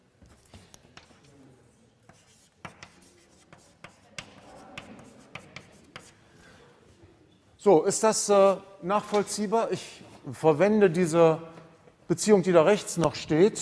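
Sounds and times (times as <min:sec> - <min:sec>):
handwriting strokes with scratchy strokes and taps: 0:02.0 - 0:06.4
speech: 0:07.6 - 0:11.5, 0:12.1 - 0:13.6.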